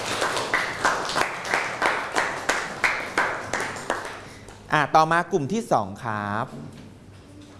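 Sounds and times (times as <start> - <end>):
class of students clapping for classmates who presented: 0.0 - 4.5
speech: 4.7 - 6.8.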